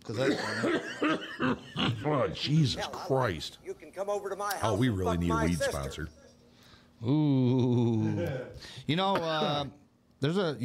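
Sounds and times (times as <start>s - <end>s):
man coughing hard: 0.1s - 2.3s
speech: 0.1s - 6.2s, 7.0s - 10.6s.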